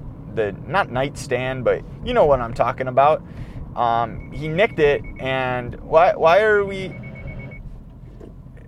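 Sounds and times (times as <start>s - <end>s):
low rumble of the moving vehicle: 0.0s - 8.6s
speech: 0.4s - 7.0s
car automatic emergency braking warning beeps: 4.1s - 5.6s, 6.7s - 7.6s.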